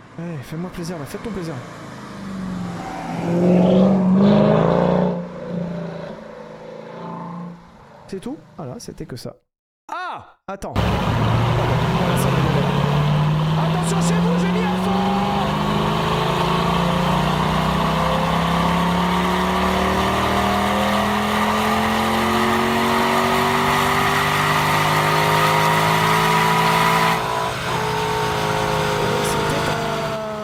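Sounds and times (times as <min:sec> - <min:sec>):
speech: 0:00.2 - 0:02.4, 0:03.2 - 0:03.8, 0:08.1 - 0:09.5, 0:10.2 - 0:12.8, 0:13.6 - 0:15.4
naturally aspirated V8 engine revving: 0:01.1 - 0:08.0, 0:10.8 - 0:30.4.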